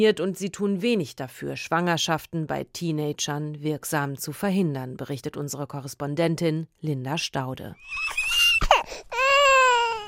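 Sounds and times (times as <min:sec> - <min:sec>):
speech: 0:00.0 - 0:08.2
baby girl fussing and whining discontentedly: 0:07.8 - 0:10.0.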